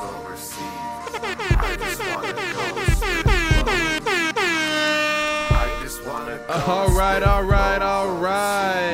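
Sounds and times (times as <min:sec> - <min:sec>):
air horn blasts: 0:01.1 - 0:05.9
speech: 0:06.6 - 0:08.8.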